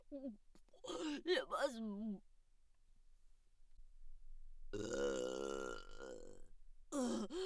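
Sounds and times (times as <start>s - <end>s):
speech: 0.1s - 0.6s, 1.2s - 2.3s
loud burps: 4.8s - 7.3s.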